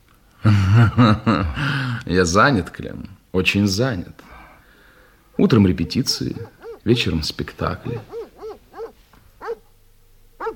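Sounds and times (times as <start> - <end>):
speech: 0.4 - 4.3, 5.4 - 8.2
dogs barking: 5.4 - 9.8.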